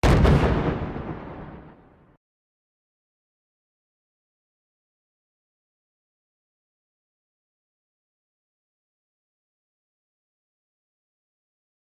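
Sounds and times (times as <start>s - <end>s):
distorted bomb explosion: 0.0s - 2.1s.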